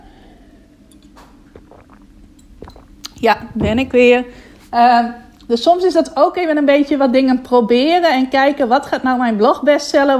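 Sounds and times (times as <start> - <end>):
low steady hum: 0.0 - 10.1
sipping water: 0.8 - 4.7
swallowing water: 0.9 - 4.5
speech: 3.2 - 10.1.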